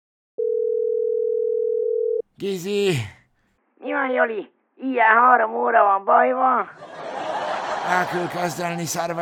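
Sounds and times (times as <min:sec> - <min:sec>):
steady telephone ringback or dial tone: 0:00.4 - 0:02.2
speech: 0:02.4 - 0:03.2, 0:03.8 - 0:07.0, 0:07.9 - 0:09.1
laughter: 0:06.8 - 0:09.1.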